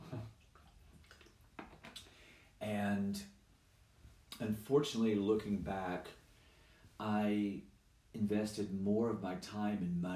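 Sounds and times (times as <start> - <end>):
person sipping water and swallowing: 0.3 - 2.1
speech: 4.4 - 6.2, 7.0 - 10.1.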